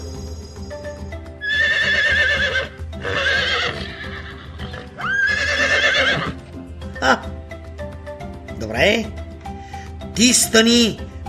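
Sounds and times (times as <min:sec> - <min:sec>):
horse whinnying: 0:01.5 - 0:06.4
speech: 0:10.2 - 0:11.1.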